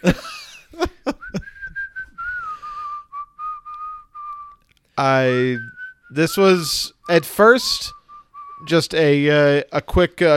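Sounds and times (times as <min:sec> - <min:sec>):
person whistling a wavering tune: 0:01.1 - 0:08.7
speech: 0:05.0 - 0:08.0, 0:08.6 - 0:10.3.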